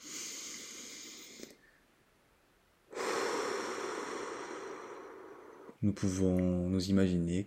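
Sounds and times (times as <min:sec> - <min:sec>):
slow deep exhales: 0:00.0 - 0:01.8, 0:02.9 - 0:05.8
speech: 0:05.8 - 0:07.4.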